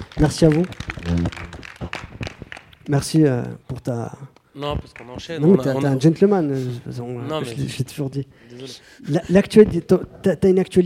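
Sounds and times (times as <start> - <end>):
scattered audience clapping: 0.0 - 3.6, 4.7 - 6.5
speech: 0.2 - 1.4, 2.9 - 10.8.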